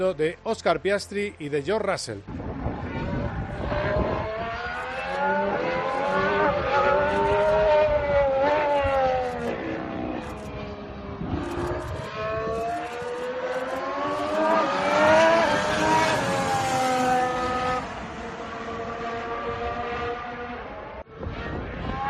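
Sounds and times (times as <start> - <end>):
speech: 0.0 - 2.4
Formula 1 cars screaming past during tyre testing: 2.8 - 20.2.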